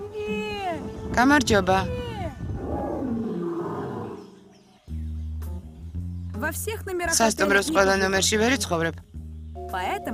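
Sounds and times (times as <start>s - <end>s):
speech: 1.1s - 2.0s, 6.5s - 9.1s, 9.7s - 10.1s
huge lion roaring: 2.6s - 4.6s.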